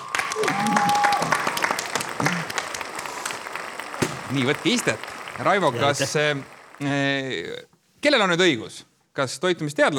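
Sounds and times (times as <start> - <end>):
studio audience applause: 0.0 - 7.2
speech: 4.3 - 9.9.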